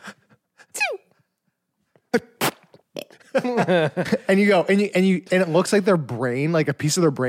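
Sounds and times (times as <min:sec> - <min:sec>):
speech: 0:02.1 - 0:02.3, 0:03.4 - 0:07.2
voice imitating a stifled held-in sneeze: 0:02.1 - 0:03.1
laughter: 0:03.2 - 0:04.6.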